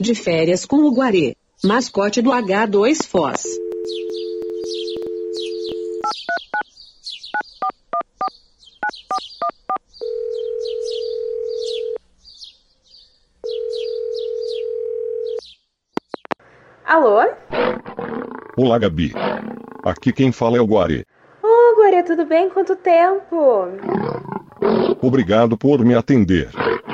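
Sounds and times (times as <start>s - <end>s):
speech: 0.0s - 4.1s, 16.9s - 17.6s, 18.6s - 21.1s, 22.0s - 26.8s
birds chirping: 0.0s - 16.5s, 17.5s - 20.6s
long ringing tones of an outgoing phone call: 3.4s - 6.6s, 9.1s - 12.0s, 13.4s - 15.4s
telephone keypad beeps: 3.5s - 6.6s
telephone dial tone of an outgoing call: 3.6s - 6.2s, 10.0s - 12.0s, 13.5s - 15.4s.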